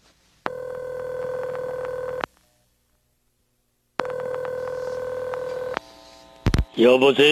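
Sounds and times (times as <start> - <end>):
telephone ringing through the line in electronic bursts: 0.5 - 2.3, 4.0 - 6.0
speech: 6.8 - 7.3.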